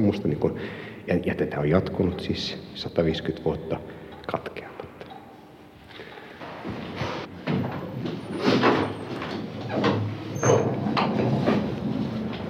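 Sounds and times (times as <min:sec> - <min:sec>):
speech: 0:00.0 - 0:04.6
heavy doors creaking, scraping and rumbling: 0:07.0 - 0:12.4.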